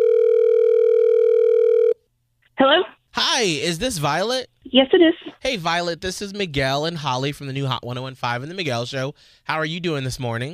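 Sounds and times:
phone line ringing while a call is placed: 0.0s - 2.0s
speech: 2.6s - 10.5s.

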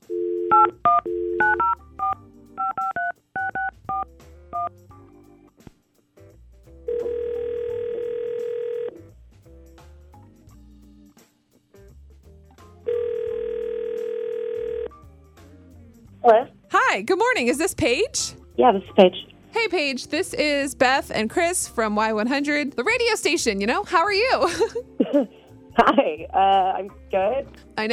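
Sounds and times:
telephone dialing tones: 0.1s - 3.7s, 6.9s - 9.0s, 12.9s - 14.9s
speech: 17.0s - 27.9s.

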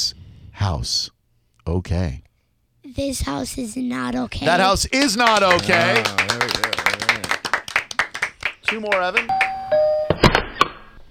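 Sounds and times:
speech: 0.6s - 2.3s, 2.9s - 6.8s, 8.7s - 9.4s
laughter: 5.0s - 7.7s
doorbell chime: 9.3s - 10.2s.

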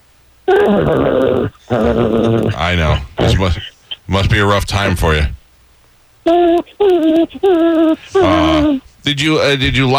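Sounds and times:
dog crying over a telephone line: 0.5s - 3.7s, 6.2s - 8.9s
speech: 0.7s - 5.4s, 6.2s - 9.9s.

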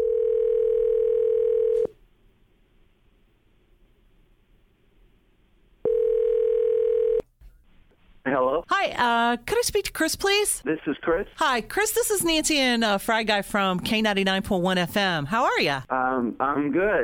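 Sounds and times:
long steady telephone tones: 0.0s - 1.9s, 5.8s - 7.2s
speech: 8.8s - 17.0s.

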